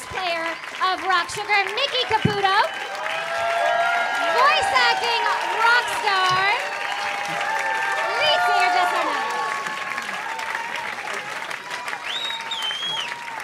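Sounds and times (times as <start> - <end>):
large audience applause and cheering: 0.0 - 13.4
speech: 0.9 - 3.0, 4.4 - 6.7
whoops: 2.6 - 13.4
shrill whistles: 12.0 - 13.4.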